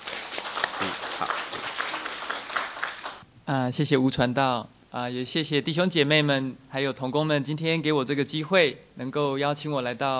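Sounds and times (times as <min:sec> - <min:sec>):
audience at a church gathering applauding to welcome a pastor: 0:00.0 - 0:03.2
speech: 0:03.5 - 0:10.1.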